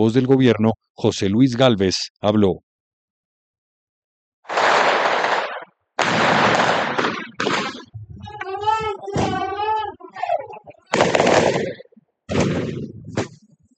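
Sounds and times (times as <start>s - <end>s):
speech: 0.0s - 2.6s
firecrackers at a street protest: 4.5s - 8.0s, 10.9s - 13.6s
gunshots at a street protest: 4.5s - 8.0s, 9.1s - 9.7s, 10.9s - 13.5s
demonstrators shouting at a street protest: 8.2s - 11.7s.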